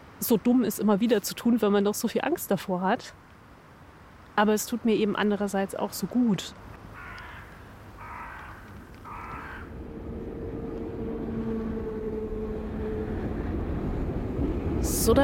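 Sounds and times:
speech: 0.2s - 3.3s, 4.4s - 6.7s
crow cawing at a train station: 6.9s - 9.8s
steady low rumble and humming tones of a train at a train station: 8.7s - 15.2s.

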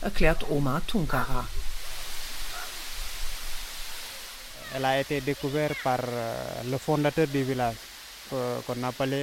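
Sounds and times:
speech: 0.0s - 1.6s, 4.7s - 9.2s
waterfall rushing in a cove enclosed by high rocks: 0.0s - 9.2s.

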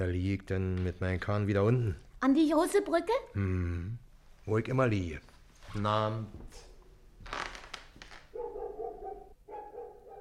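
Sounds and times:
speech: 0.0s - 7.4s
dog barking: 8.3s - 10.2s.

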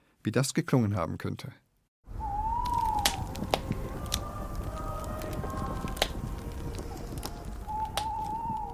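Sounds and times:
speech: 0.2s - 1.6s
recreated mountain bonfire crackling with pops and snaps: 2.1s - 8.7s
thin whistling hiss: 2.1s - 8.7s.

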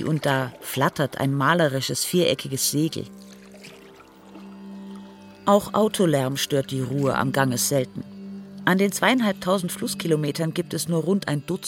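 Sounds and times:
oar splashing in river water as fishermen row a boat: 0.0s - 1.2s, 3.0s - 5.2s
speech: 0.0s - 3.3s, 5.5s - 11.6s.

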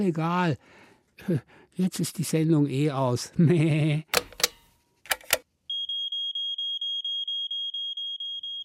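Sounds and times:
speech: 0.0s - 4.2s
laughter: 3.4s - 4.1s
button press clicks: 4.2s - 5.4s
high-pitched electronic alarm beeping rapidly: 5.7s - 8.6s.

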